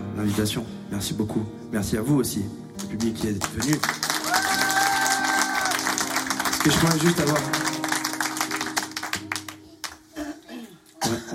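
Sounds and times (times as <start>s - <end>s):
speech: 0.2s - 4.0s, 6.6s - 7.7s
crowd snapping their fingers: 2.8s - 10.3s.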